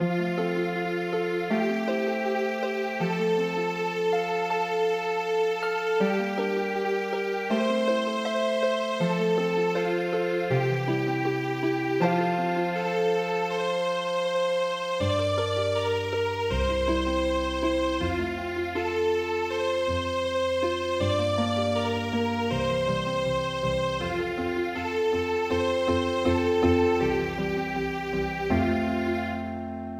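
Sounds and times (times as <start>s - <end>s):
traditional midi harp music: 0.0s - 29.9s.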